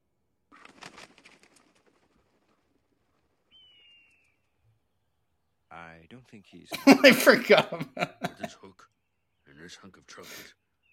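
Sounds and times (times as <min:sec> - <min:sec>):
eagle wings flapping: 0:00.5 - 0:04.4
speech: 0:05.8 - 0:09.0, 0:09.6 - 0:10.6
laughter: 0:06.7 - 0:08.6.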